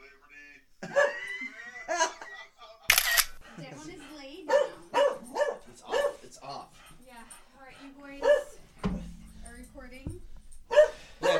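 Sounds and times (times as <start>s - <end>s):
people talking: 0.0s - 0.6s, 1.5s - 10.3s
laughter: 0.8s - 5.5s, 10.9s - 11.3s
dog barking: 0.9s - 1.3s, 4.4s - 6.6s, 8.2s - 8.8s, 10.7s - 11.3s
sharp clattering: 8.2s - 11.0s.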